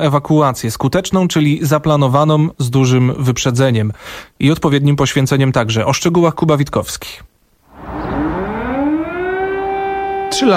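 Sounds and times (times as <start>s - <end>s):
speech: 0.0s - 8.0s, 10.3s - 10.5s
air raid warning siren wailing: 7.7s - 10.5s.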